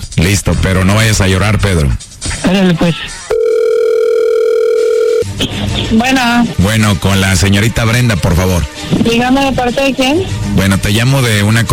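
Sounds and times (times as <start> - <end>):
speech: 0.2 - 3.2, 5.4 - 11.7
telephone dial tone as a call is placed: 3.3 - 5.3.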